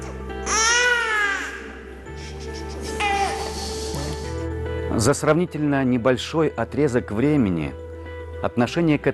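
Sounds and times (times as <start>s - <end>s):
infant crying in a church: 0.4s - 4.2s
speech: 5.0s - 7.8s, 8.4s - 9.1s.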